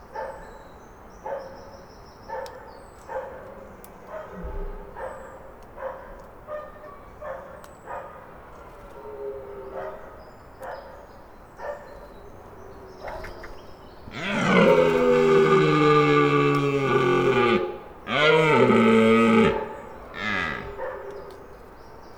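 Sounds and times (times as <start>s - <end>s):
red deer stag bellowing near a garden: 14.1s - 20.9s.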